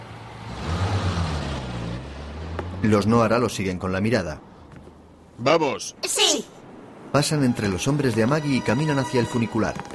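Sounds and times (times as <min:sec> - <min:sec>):
car engine rumbling as the car drives away: 0:00.0 - 0:03.4
speech: 0:02.8 - 0:04.5, 0:05.4 - 0:09.9.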